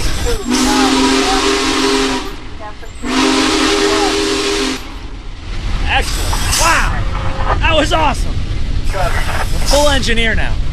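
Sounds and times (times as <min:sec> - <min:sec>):
Big Boy steam locomotive whistle blown by a passenger in the cab: 0:00.0 - 0:05.0
steam locomotive steam hissing: 0:00.0 - 0:10.2
speech: 0:07.8 - 0:08.3, 0:08.9 - 0:10.7.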